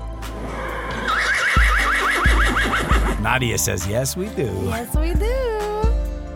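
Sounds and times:
horse whinnying: 0.9 - 3.2
speech: 3.2 - 5.5.

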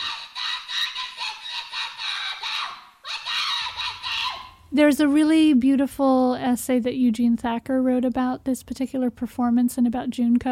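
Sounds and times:
high-pitched screeching scream: 0.0 - 4.6
speech: 4.7 - 10.5.

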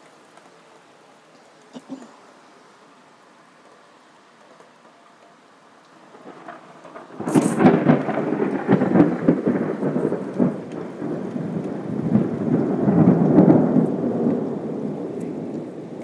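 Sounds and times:
heavy rain: 0.0 - 16.0
thunderclap rolling into a rumbling boom: 6.0 - 16.0.

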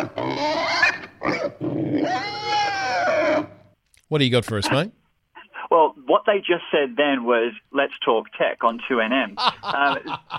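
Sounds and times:
pig grunting and squealing: 0.0 - 3.7
speech: 0.4 - 2.6, 4.1 - 5.0, 6.1 - 10.3
laughter: 9.4 - 10.3.

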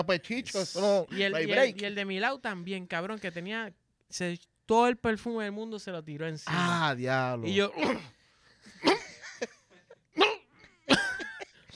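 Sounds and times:
speech: 0.0 - 9.6
person coughing and choking with strained gasping: 7.7 - 9.4, 10.1 - 11.7.

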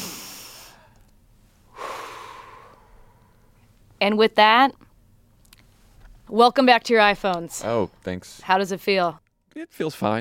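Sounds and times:
deep breath taken as a group breathing exercise: 0.0 - 3.7
speech: 4.0 - 4.8, 6.3 - 10.1.

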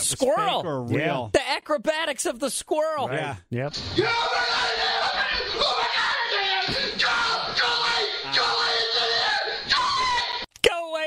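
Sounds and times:
speech: 0.1 - 6.1
man's long shrill high-pitched scream: 3.9 - 10.4.

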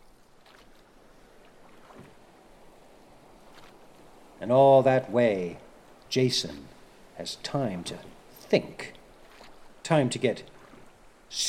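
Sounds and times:
oars pulling through water rowing a ship: 0.0 - 11.4
speech: 4.4 - 9.0, 9.9 - 10.5.

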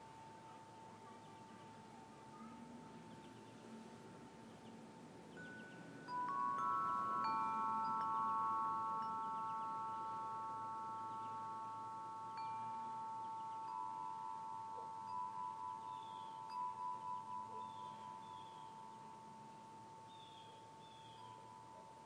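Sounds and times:
wind chime: 0.0 - 22.0.

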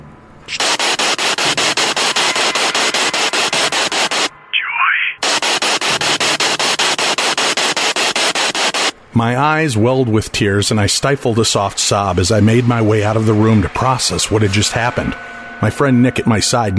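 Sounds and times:
speech: 0.5 - 0.8, 9.2 - 16.7
radio static popping and hissing: 0.5 - 9.0.

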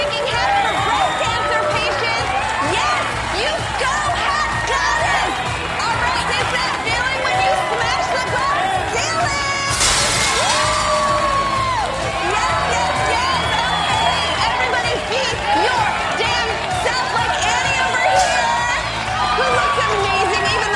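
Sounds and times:
loud crowd cheering, shouting and chattering: 0.0 - 20.7
glass shattering: 9.7 - 11.6.

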